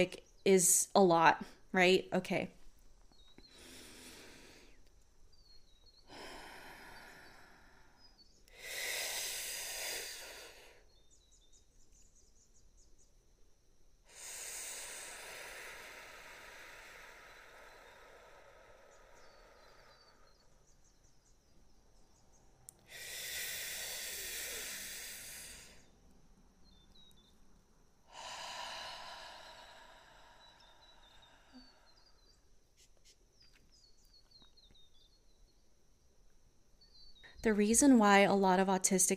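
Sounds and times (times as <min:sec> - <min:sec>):
speech: 0:00.0 - 0:02.6, 0:37.4 - 0:39.1
deep breaths during a guided relaxation exercise: 0:03.1 - 0:11.0, 0:14.1 - 0:20.7, 0:22.8 - 0:25.9, 0:28.0 - 0:32.5.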